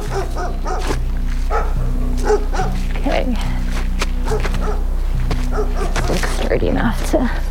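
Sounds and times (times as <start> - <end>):
several dogs barking and whimpering with high yips: 0.0 - 3.3, 4.2 - 6.4
speech: 6.9 - 7.4.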